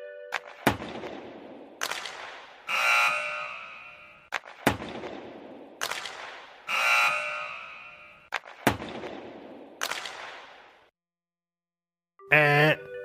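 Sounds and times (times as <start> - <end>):
sharp cracking impacts in a repeating loop: 0.3 - 10.9
loud harsh hockey buzzer signaling end of match: 2.7 - 4.3, 6.7 - 8.3
speech: 12.3 - 12.7.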